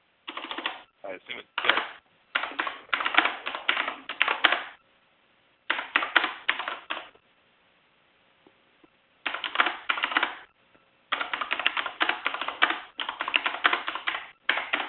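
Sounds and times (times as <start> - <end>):
typing on a computer keyboard on a wooden table: 0.3 - 0.9, 1.6 - 4.8, 5.7 - 7.2, 9.2 - 10.5, 11.1 - 14.8
speech: 1.1 - 2.7.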